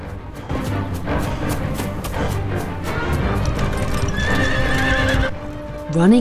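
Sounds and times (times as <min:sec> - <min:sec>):
horses with riders galloping through a forest: 0:00.5 - 0:05.8
horse whinnying: 0:03.8 - 0:05.3.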